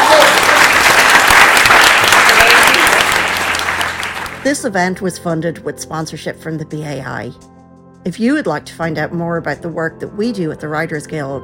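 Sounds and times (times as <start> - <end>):
audience applause at a live panel discussion: 0.0 - 4.4
speech: 4.4 - 11.4.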